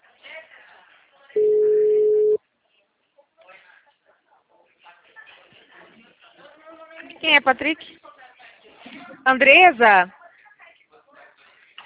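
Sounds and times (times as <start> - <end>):
telephone ringback tone while a call connects: 1.4 - 2.4
speech: 7.2 - 8.0, 9.3 - 10.2.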